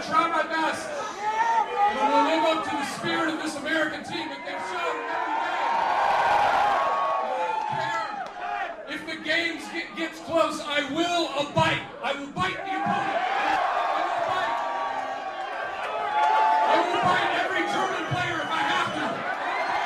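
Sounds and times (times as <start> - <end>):
comedian talking loudly over the din: 0.0 - 1.1, 1.8 - 5.4, 8.9 - 13.2, 16.7 - 19.2
large noisy crowd at a soccer rally in Recife roaring and cheering: 0.0 - 19.8.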